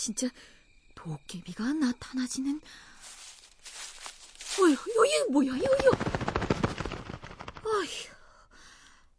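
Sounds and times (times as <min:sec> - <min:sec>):
speech: 0:00.0 - 0:02.9, 0:04.6 - 0:06.5, 0:07.7 - 0:08.2
pigeon flapping its wings: 0:04.5 - 0:08.0.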